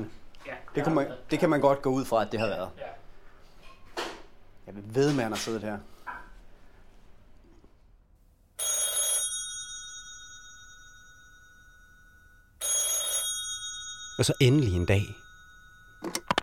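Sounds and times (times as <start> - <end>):
speech: 0.0 - 3.0, 4.7 - 5.9, 14.2 - 15.2, 16.0 - 16.3
old-style telephone bell ringing: 8.6 - 16.4.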